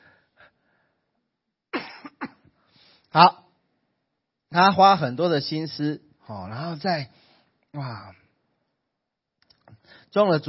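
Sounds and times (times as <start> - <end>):
person coughing: 1.7 - 2.5
speech: 3.1 - 3.4, 4.5 - 8.2, 10.1 - 10.4.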